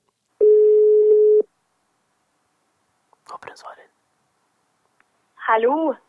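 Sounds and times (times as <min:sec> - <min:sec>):
telephone ringback tone while calling: 0:00.4 - 0:01.4
speech: 0:03.6 - 0:04.0, 0:05.5 - 0:06.0.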